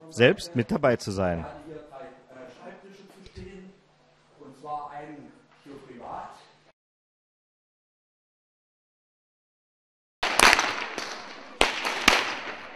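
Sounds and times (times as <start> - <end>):
speech: 0.1 - 1.6
whips cracking by Pentecost folk dancers in Alsdorf in the Mansfelder Grund: 10.3 - 12.7.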